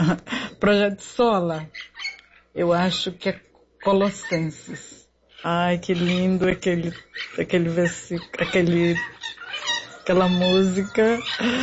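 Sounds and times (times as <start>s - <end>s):
speech: 0.0s - 1.9s, 2.6s - 9.2s, 10.1s - 11.6s
birds chirping and clucking: 1.2s - 11.6s.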